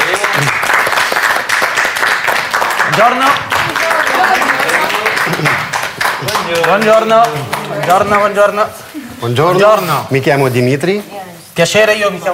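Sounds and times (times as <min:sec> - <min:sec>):
large audience applause welcoming a guest: 0:00.0 - 0:08.5
speech: 0:03.0 - 0:03.5, 0:06.2 - 0:12.3.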